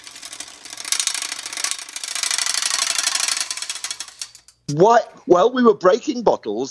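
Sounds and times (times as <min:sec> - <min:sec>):
knife blade rattling against spokes of spinning bicycle wheel: 0:00.0 - 0:04.7
person speaking: 0:04.7 - 0:06.6.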